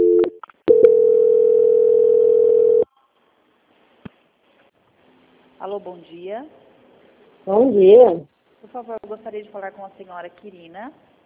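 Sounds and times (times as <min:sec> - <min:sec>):
telephone line beeps and clicks during a call transfer: 0:00.0 - 0:02.8
speech: 0:05.6 - 0:06.7, 0:07.4 - 0:11.1.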